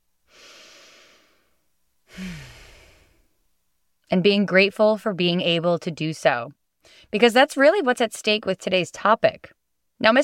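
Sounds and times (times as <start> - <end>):
person taking a deep breath: 0.3 - 3.3, 6.8 - 7.1
speech: 4.1 - 10.2.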